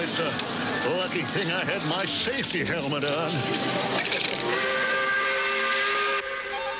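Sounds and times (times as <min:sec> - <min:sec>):
speech: 0:00.2 - 0:04.9
steam whistle blowing at quitting time: 0:04.5 - 0:06.7.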